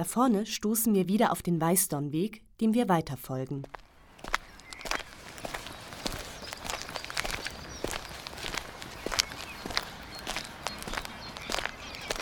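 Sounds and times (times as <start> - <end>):
speech: 0.0 - 3.8
footsteps walking along a riverbank: 3.6 - 12.2.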